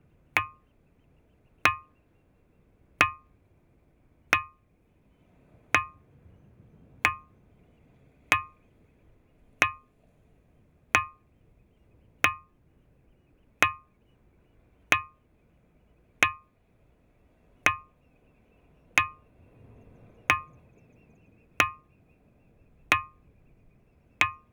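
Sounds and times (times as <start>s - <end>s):
bell stone ringing rock struck on the Isle of Iona: 0.4s - 0.7s, 1.7s - 2.0s, 3.0s - 3.4s, 4.3s - 4.6s, 5.8s - 6.1s, 7.0s - 7.4s, 8.3s - 8.6s, 9.6s - 10.0s, 11.0s - 11.3s, 12.2s - 12.6s, 13.6s - 14.0s, 14.9s - 15.2s, 16.2s - 16.6s, 17.6s - 18.0s, 19.0s - 19.3s, 20.3s - 20.6s, 21.6s - 21.9s, 22.9s - 23.3s, 24.2s - 24.5s.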